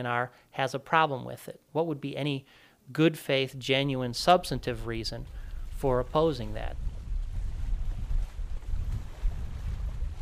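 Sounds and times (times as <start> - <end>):
speech: 0.0 - 6.9
faint lake water sounds: 2.1 - 10.2
wind buffeting the microphone at a lake boat launch: 4.6 - 10.2.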